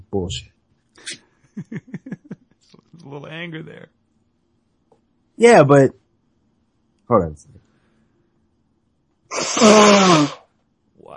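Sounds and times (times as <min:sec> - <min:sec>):
speech: 0:00.1 - 0:02.1, 0:03.1 - 0:04.0, 0:05.4 - 0:06.0, 0:07.1 - 0:07.6, 0:09.6 - 0:10.4
laughter: 0:01.6 - 0:02.7
person sneezing: 0:09.3 - 0:10.4.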